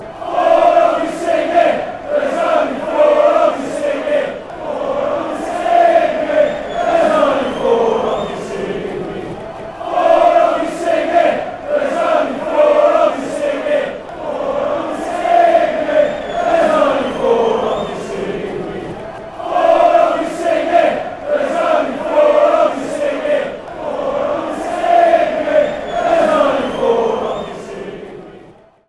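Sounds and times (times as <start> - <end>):
fans chanting: 0.0 - 28.8.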